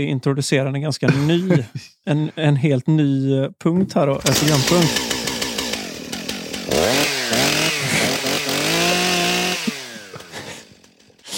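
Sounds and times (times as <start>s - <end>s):
speech: 0.0s - 5.1s
laughter: 1.0s - 2.5s, 9.4s - 10.8s
chainsaw revving and cutting: 4.2s - 11.3s.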